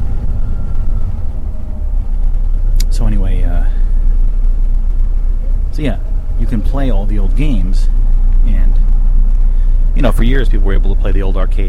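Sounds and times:
bus engine rumbling while riding inside: 0.0 - 11.6
speech: 5.8 - 8.9, 10.0 - 11.6.

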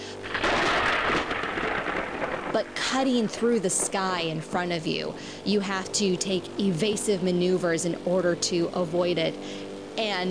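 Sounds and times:
rain: 0.0 - 4.5
crack of thunder from a lightning strike: 0.2 - 4.2
speech: 2.6 - 10.2.

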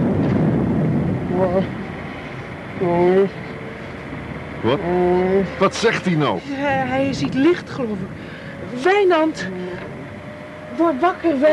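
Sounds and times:
storm wind roaring and rushing: 0.0 - 11.5
speech: 1.4 - 1.8, 2.8 - 3.5, 4.6 - 9.9, 10.8 - 11.5.

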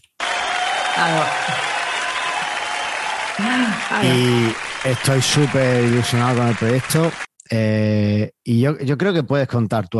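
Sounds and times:
crowd applause with many hands clapping: 0.0 - 7.3
speech: 1.0 - 1.7, 3.4 - 9.9.

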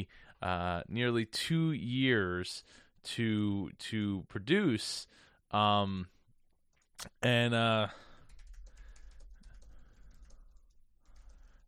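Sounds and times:
speech: 0.0 - 6.2, 7.0 - 8.1
fingers typing on a computer keyboard: 8.0 - 11.6.

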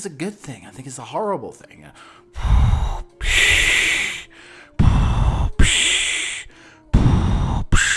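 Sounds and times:
speech: 0.0 - 2.9
person imitating heavy rasping mask-like respirator breathing: 2.4 - 7.9.

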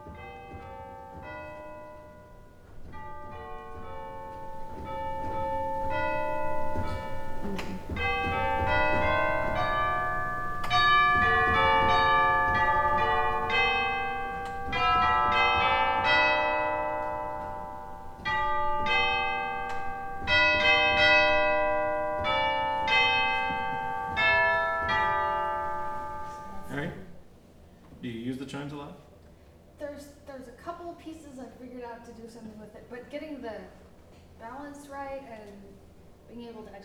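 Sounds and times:
bell-like pipe organ chimes ringing: 0.0 - 27.2.

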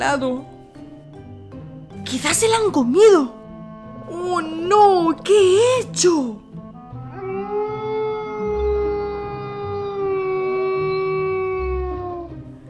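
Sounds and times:
speech: 0.0 - 0.6, 2.0 - 3.4, 4.1 - 6.4
wolf howling: 6.9 - 12.6.

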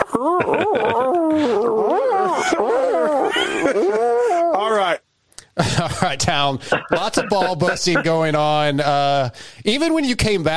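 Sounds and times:
lone wolf howling with yipping glides: 0.0 - 4.6
speech: 0.1 - 1.0, 6.0 - 10.5
laughter: 0.1 - 1.6, 6.9 - 8.3.

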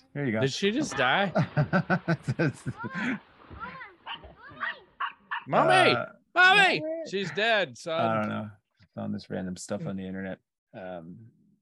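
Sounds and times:
speech: 0.2 - 3.3, 5.5 - 11.4
laughter: 0.8 - 3.2
dog barking: 4.0 - 5.5.

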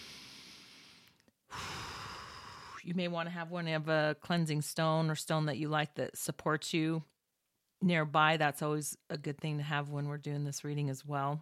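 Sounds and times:
deep breath taken during a guided relaxation exercise: 0.0 - 2.8
speech: 2.8 - 7.1, 7.8 - 11.4.

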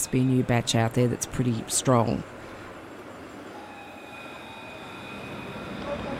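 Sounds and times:
speech: 0.0 - 2.4
thin sustained electric whine of a tram: 0.0 - 6.1
tram rolling past a tram stop with a steady low rumble: 0.0 - 6.1.

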